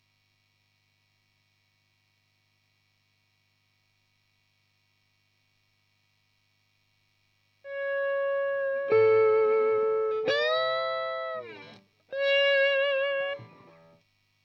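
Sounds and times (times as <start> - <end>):
electric guitar solo through an amp: 7.7 - 14.0.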